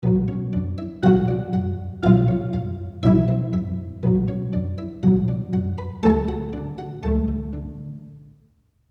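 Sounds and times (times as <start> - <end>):
pizzicato: 0.0 - 8.5.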